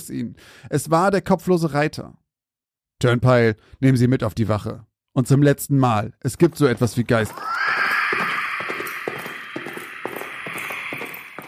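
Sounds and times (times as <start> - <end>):
speech: 0.1 - 2.2, 3.0 - 7.6
horse whinnying shrilly: 7.3 - 11.4.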